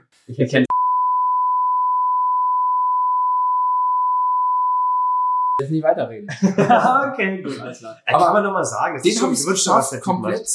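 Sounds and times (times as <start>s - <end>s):
speech: 0.2s - 0.7s, 5.6s - 10.5s
high-pitched censor bleep over a spoken name: 0.7s - 5.6s
laughter: 6.2s - 8.0s.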